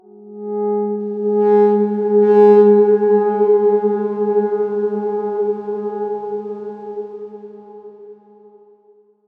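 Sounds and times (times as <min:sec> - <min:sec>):
dark swarm synth tone: 0:00.8 - 0:08.0.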